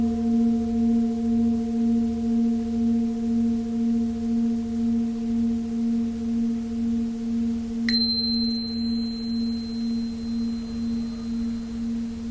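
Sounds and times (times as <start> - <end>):
Tibetan singing bowl humming with a low pulsing drone: 0.0 - 12.2
bright metallic strike on a Tibetan singing bowl: 7.9 - 11.9.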